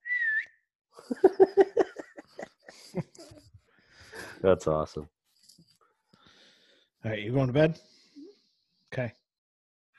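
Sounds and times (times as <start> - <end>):
girl whistling: 0.0 - 0.6
laughter: 1.0 - 3.5
speech: 1.1 - 1.4, 4.4 - 5.2, 7.0 - 7.9, 9.0 - 9.2.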